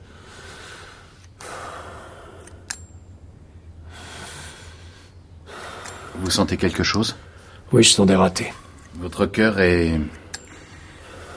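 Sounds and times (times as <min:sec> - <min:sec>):
patient breathing deeply during a heart examination: 0:00.0 - 0:02.7, 0:03.5 - 0:06.3, 0:10.0 - 0:11.3
speech: 0:06.2 - 0:10.2.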